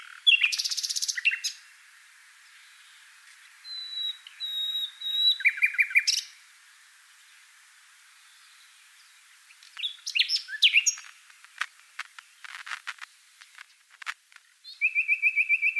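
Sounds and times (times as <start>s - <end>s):
Common nightingale song: 0.0s - 1.8s, 2.4s - 15.7s
sharp clicks: 9.6s - 14.5s.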